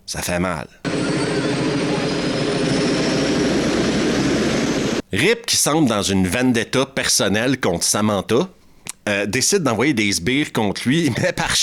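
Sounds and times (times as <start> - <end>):
speech: 0.1 - 1.2, 5.1 - 11.6
loud steady helicopter engine roar as the helicopter flies off: 0.9 - 5.0.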